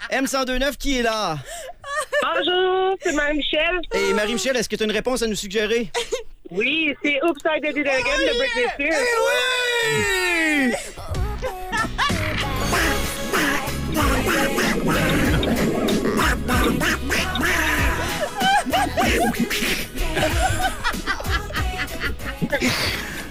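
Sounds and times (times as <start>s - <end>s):
speech: 0.1s - 1.6s, 2.2s - 11.1s
laughter: 1.4s - 4.5s, 8.0s - 23.2s
duck quacking: 12.1s - 22.0s.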